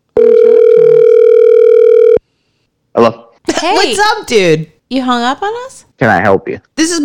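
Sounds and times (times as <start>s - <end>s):
phone line ringing on an outgoing call: 0.2s - 2.2s
speech: 3.0s - 7.0s.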